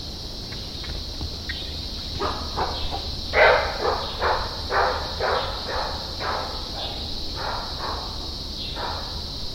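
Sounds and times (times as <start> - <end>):
red muntjac calls: 0.5 - 9.2.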